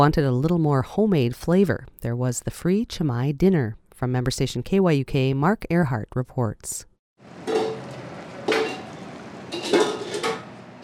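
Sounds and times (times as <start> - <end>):
speech: 0.0 - 7.4
busy kitchen hum: 7.2 - 10.8
metal pots and pans clanking and scraping: 7.3 - 10.8.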